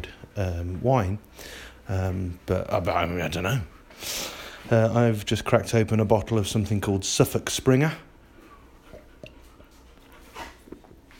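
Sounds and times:
speech: 0:00.0 - 0:08.1
dog panting: 0:08.0 - 0:10.8.

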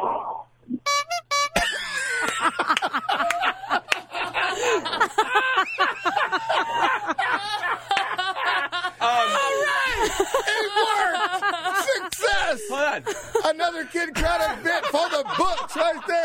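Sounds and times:
many car horns honking: 0:00.8 - 0:02.0
laughter: 0:01.5 - 0:16.2.

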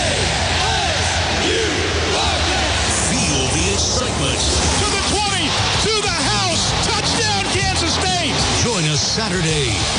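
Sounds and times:
overlapping yells and whoops from the stadium crowd: 0:00.0 - 0:03.4, 0:04.6 - 0:08.8
dense stadium crowd roaring: 0:00.0 - 0:09.9.

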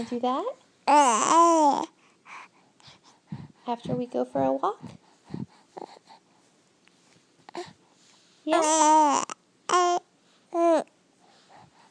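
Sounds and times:
speech: 0:00.0 - 0:02.0, 0:03.7 - 0:05.0, 0:08.5 - 0:10.9
baby babbling and squealing: 0:00.9 - 0:01.9, 0:08.5 - 0:10.9.

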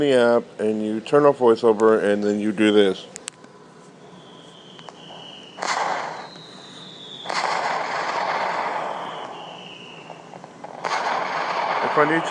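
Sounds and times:
speech: 0:00.0 - 0:03.2, 0:12.0 - 0:12.3
fireworks sound effect whistling streak from an iPad app: 0:04.0 - 0:12.3
fireworks sound effect booming crackling bursts from an iPad app: 0:04.9 - 0:12.3.

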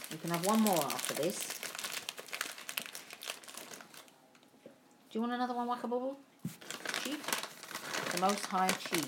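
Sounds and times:
crinkly plastic snack packet rustled and crumpled: 0:00.0 - 0:04.2, 0:06.6 - 0:09.0
speech: 0:00.1 - 0:01.6, 0:05.2 - 0:07.3, 0:08.1 - 0:09.0.

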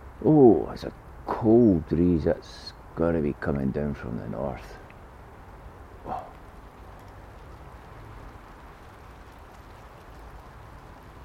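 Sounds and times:
light rain falling outdoors: 0:00.0 - 0:11.2
speech: 0:00.2 - 0:04.8, 0:06.0 - 0:06.3.

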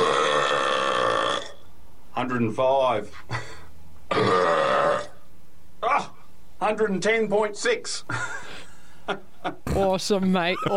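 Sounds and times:
extremely loud human burp from a man attempting a burping world record: 0:00.0 - 0:01.7, 0:04.1 - 0:05.2
speech: 0:02.2 - 0:03.5, 0:06.7 - 0:08.4, 0:09.1 - 0:10.7.

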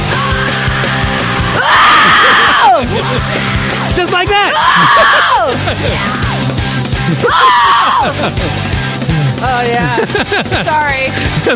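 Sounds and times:
rock band with driving guitars and drums: 0:00.0 - 0:11.5
raw screamed rock vocal: 0:01.5 - 0:02.9, 0:04.4 - 0:06.4, 0:07.2 - 0:08.1
laughter: 0:01.9 - 0:11.5
speech: 0:04.1 - 0:04.8, 0:05.5 - 0:06.2, 0:07.1 - 0:08.7, 0:09.6 - 0:11.5.

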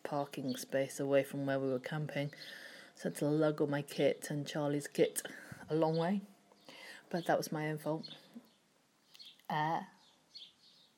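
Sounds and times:
speech: 0:00.1 - 0:06.3, 0:07.1 - 0:08.2, 0:09.5 - 0:09.9
birds cheeping: 0:05.9 - 0:10.9.

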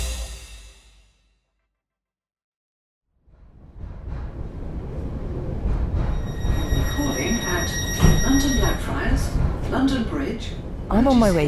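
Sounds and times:
moving train carriage rumble: 0:03.4 - 0:11.4
high metallic train wheel squeal: 0:06.1 - 0:09.5
speech: 0:10.9 - 0:11.4.

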